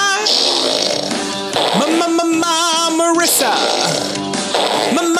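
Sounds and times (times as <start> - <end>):
baby farting: 0.2 - 2.1, 3.2 - 5.1.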